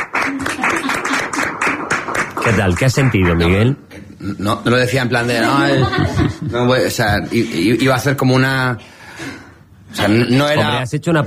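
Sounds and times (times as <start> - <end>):
people clapping: 0.0 - 3.8
speech: 2.4 - 11.2
laughter: 5.4 - 8.0.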